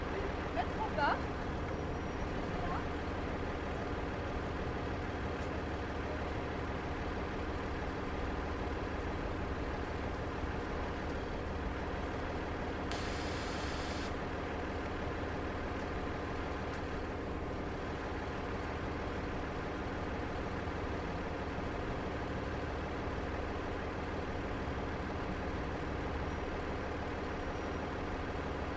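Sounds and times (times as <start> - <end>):
airport shuttle bus engine idling at a bus stop: 0.0 - 28.7
brief bright hiss: 12.9 - 14.1.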